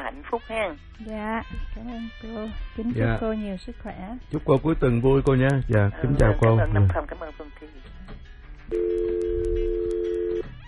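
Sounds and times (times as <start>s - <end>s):
speech: 0.2s - 8.1s, 8.7s - 9.5s
telephone dial tone on a call-in line: 8.7s - 10.5s.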